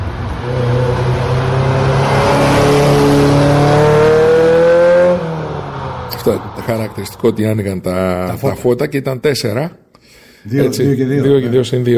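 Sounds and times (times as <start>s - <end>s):
1984 Ferrari Mondial Cabriolet engine revving: 0.0s - 8.6s
speech: 6.3s - 11.9s.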